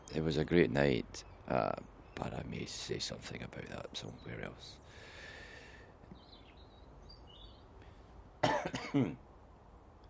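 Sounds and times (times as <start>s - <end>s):
speech: 0.1s - 5.0s, 8.6s - 9.3s
harsh coughing: 8.4s - 9.2s.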